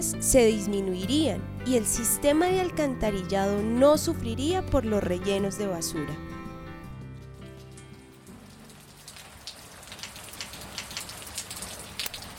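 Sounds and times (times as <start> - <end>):
speech: 0.0 - 6.3
steady rain pattering on a hard surface: 7.2 - 12.3.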